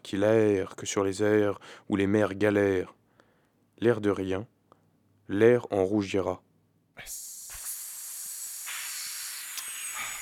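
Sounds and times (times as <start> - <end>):
speech: 0.1 - 3.0, 3.8 - 4.5, 5.3 - 6.4, 7.0 - 7.2
voice hissing like a snake for the letter S: 7.0 - 10.1.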